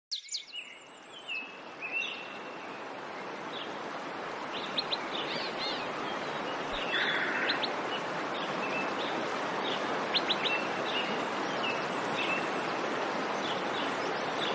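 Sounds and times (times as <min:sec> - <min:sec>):
nightingale song: 0:00.1 - 0:03.8, 0:04.5 - 0:14.5.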